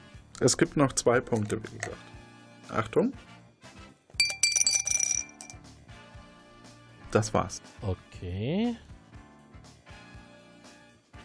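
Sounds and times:
speech: 0.4 - 3.3, 7.1 - 8.9
small hard objects pouring into a glass: 4.2 - 5.6.

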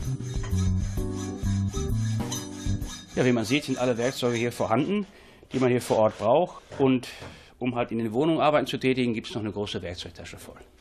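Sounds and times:
rasping and rubbing strokes in carpentry on a wooden bed leg: 0.0 - 6.9
speech: 3.2 - 10.7.

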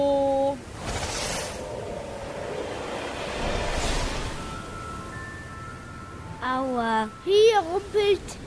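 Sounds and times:
ocean surf surging: 0.2 - 6.0
speech: 6.7 - 8.4.

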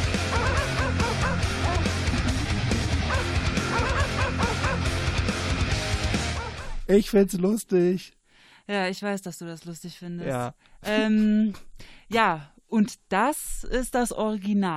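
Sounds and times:
loud dense heavy metal music: 0.0 - 6.9
dogs barking in rapid bursts: 0.1 - 5.3, 6.2 - 6.8
speech: 6.9 - 14.7.

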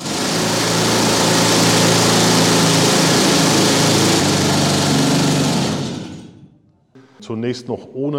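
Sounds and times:
pneumatic rock drill hammering: 0.0 - 6.4
speech: 7.3 - 8.1.

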